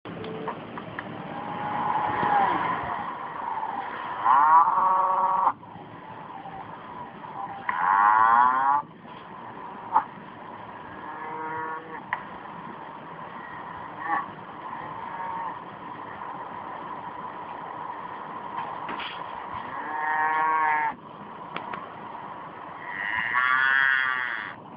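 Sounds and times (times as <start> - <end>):
cow mooing: 1.3 - 5.6, 7.5 - 8.8, 11.0 - 12.0, 14.0 - 15.6, 19.7 - 21.0, 22.8 - 24.6.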